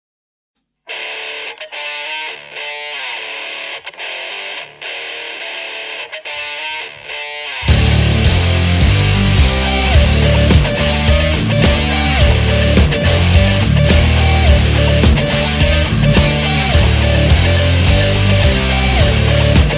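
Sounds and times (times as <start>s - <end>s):
hard rock guitar: 0.9s - 19.7s.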